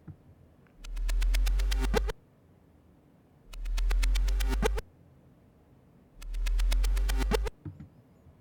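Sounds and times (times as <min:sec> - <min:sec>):
reversed sound effect with panning and stereo-widening plugins: 0:00.8 - 0:02.2, 0:03.5 - 0:04.8, 0:06.2 - 0:07.5.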